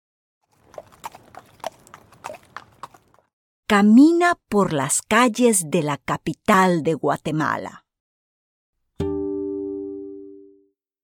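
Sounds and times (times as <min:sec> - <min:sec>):
horse or mule hooves clip-clopping: 0:00.5 - 0:03.3
speech: 0:03.7 - 0:07.8.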